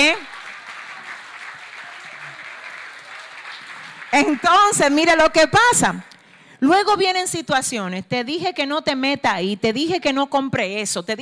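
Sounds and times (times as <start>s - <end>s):
audience applause: 0.0s - 6.2s
speech: 4.2s - 11.2s.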